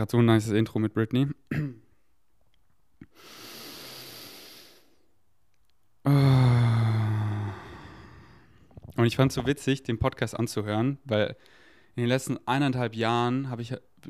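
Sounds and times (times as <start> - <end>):
speech: 0.0 - 1.8, 9.0 - 14.0
deep breath: 3.0 - 5.1, 6.0 - 8.8, 11.4 - 12.0.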